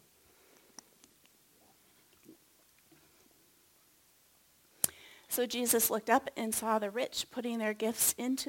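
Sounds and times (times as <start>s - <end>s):
person sipping and swallowing water: 0.3s - 3.5s
speech: 5.4s - 8.4s.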